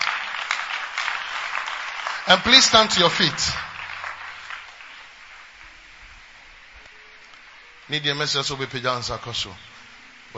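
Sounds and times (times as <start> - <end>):
audience clapping: 0.0 - 5.8
speech: 2.3 - 3.7, 7.9 - 9.7.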